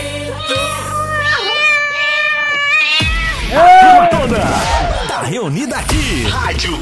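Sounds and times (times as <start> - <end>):
cat meowing loudly: 0.4 - 4.3
speech: 5.4 - 6.7.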